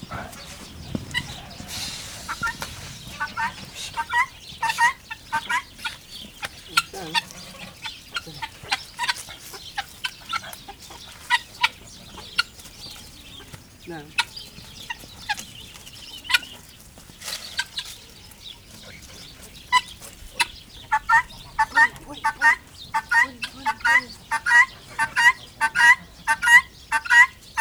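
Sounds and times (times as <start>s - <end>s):
guineafowl screeching in a farmyard: 0.0s - 12.7s, 19.7s - 27.5s.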